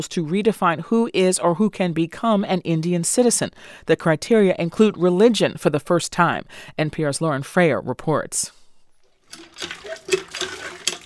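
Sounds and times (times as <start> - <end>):
speech: 0.0 - 8.6, 9.3 - 10.2
running water from an outdoor water pump splashing: 9.1 - 11.0
crockery and pans clinking while dishes are washed: 9.3 - 11.0.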